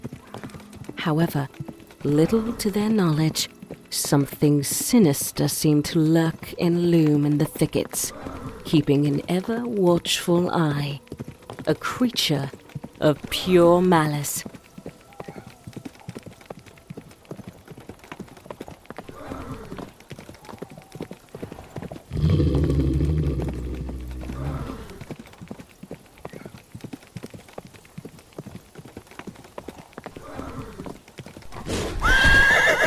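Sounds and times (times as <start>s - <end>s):
horse hooves clip-clopping: 0.0s - 32.8s
speech: 1.0s - 11.0s, 11.7s - 14.6s
horse neighing: 22.1s - 25.0s, 31.7s - 32.8s.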